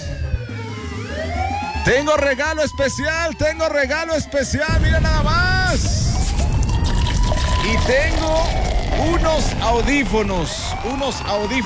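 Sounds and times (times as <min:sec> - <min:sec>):
siren wailing: 0:00.0 - 0:11.6
speech: 0:01.8 - 0:05.9, 0:07.7 - 0:11.6.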